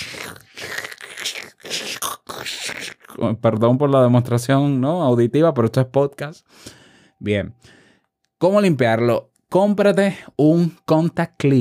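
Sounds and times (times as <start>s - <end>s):
voice imitating scratchy volume potentiometer crackle: 0.0s - 3.3s
speech: 3.2s - 7.8s, 8.4s - 11.5s.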